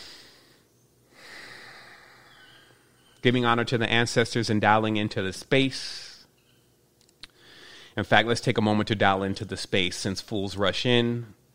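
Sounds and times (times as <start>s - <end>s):
person taking a soft airy breath in: 0.0s - 3.2s, 7.3s - 8.0s
speech: 3.2s - 6.1s, 8.0s - 11.4s.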